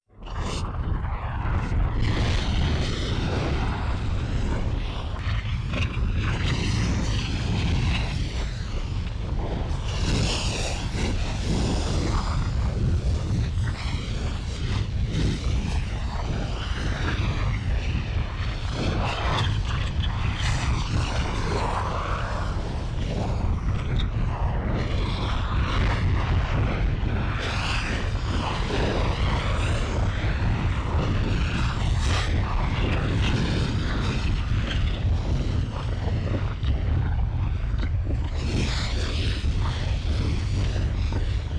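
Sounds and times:
volcano lava fire: 0.1 - 41.5.

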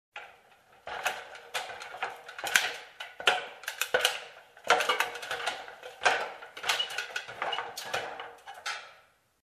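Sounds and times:
clattering in a workshop: 0.2 - 9.2.

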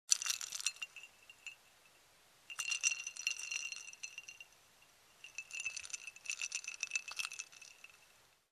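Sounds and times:
straw stirring a cold drink: 0.1 - 1.6, 2.5 - 4.5, 5.2 - 8.1.

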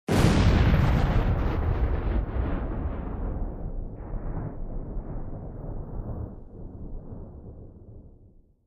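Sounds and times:
bomb explosion up-close: 0.1 - 8.6.

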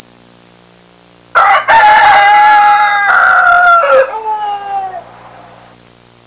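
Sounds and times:
farm rooster crowing loudly: 1.3 - 5.7.

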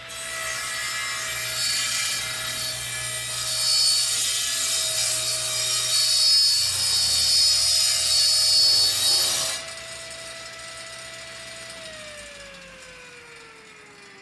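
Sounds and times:
cutting machine cutting metal: 0.1 - 14.2.

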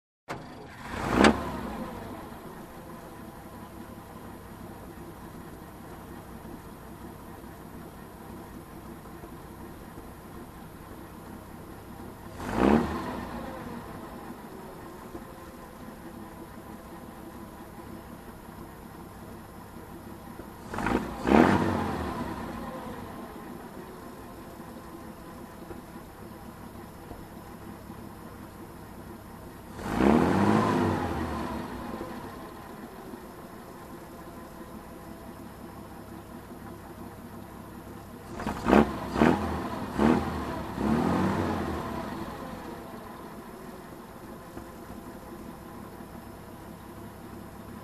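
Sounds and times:
military truck engine revving: 0.4 - 2.5, 12.3 - 14.1, 20.6 - 23.3, 29.7 - 32.5, 38.3 - 43.2.

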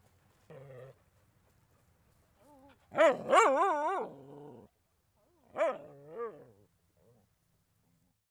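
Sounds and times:
small dog whiny growl: 0.5 - 1.0, 3.0 - 4.7, 5.7 - 7.2
small dog yelping barks: 3.0 - 4.1.

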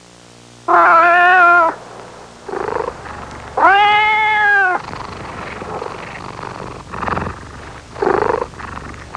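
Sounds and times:
young jungle tiger meowing and trilling: 0.7 - 1.8, 3.6 - 4.8.

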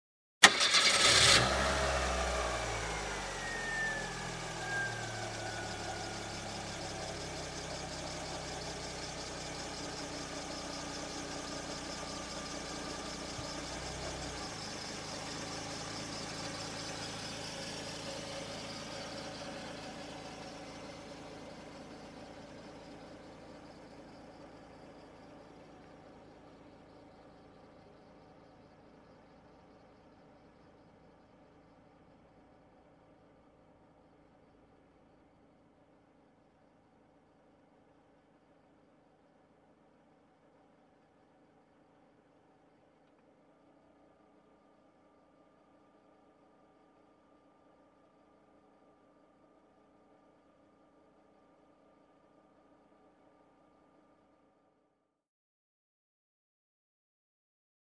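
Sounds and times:
car engine ignition: 0.4 - 31.6.

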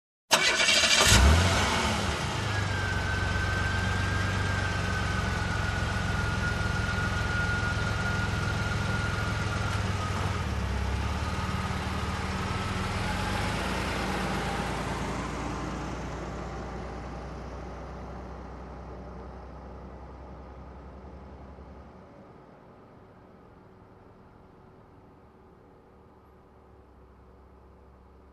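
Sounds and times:
car engine starting: 0.3 - 20.7.

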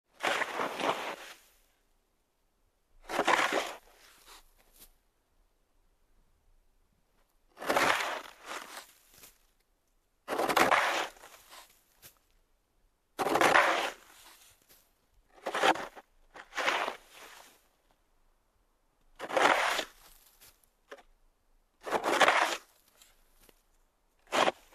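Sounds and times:
shoveling through dirt and sand: 0.1 - 1.7, 3.0 - 4.9, 7.6 - 9.4, 10.3 - 12.2, 13.2 - 17.7, 19.2 - 21.0, 21.8 - 23.6, 24.2 - 24.7.

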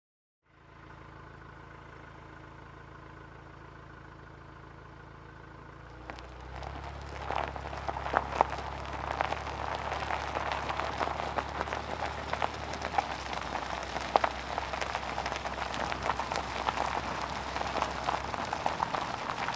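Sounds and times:
car driving on gravel with open window: 0.6 - 19.5.

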